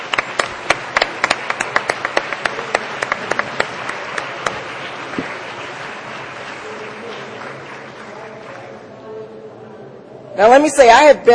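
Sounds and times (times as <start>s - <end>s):
audience applause: 0.0s - 8.9s
speech: 10.4s - 11.3s.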